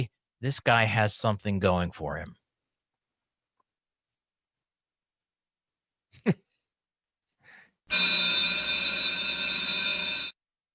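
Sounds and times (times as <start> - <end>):
speech: 0.0 - 2.4, 6.2 - 6.4, 7.9 - 8.3
short breath: 7.4 - 7.8
school bell ringing: 7.9 - 10.4.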